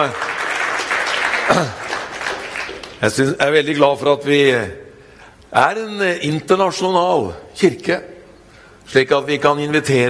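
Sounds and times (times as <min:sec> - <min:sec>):
speech: 0:00.0 - 0:00.2, 0:01.5 - 0:01.8, 0:03.0 - 0:04.8, 0:05.5 - 0:08.1, 0:08.9 - 0:10.0
audience applause in a church: 0:00.0 - 0:03.0.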